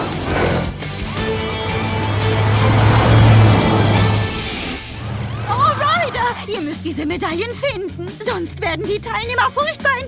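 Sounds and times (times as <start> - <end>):
police car and police quad bike engines revving as they speed away: 0.0 - 7.2
speech: 7.1 - 10.0.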